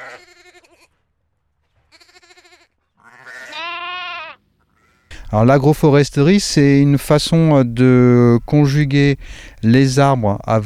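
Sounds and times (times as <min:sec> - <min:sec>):
ewes bleating: 0:00.0 - 0:00.9, 0:01.9 - 0:05.4
speech: 0:05.3 - 0:10.6.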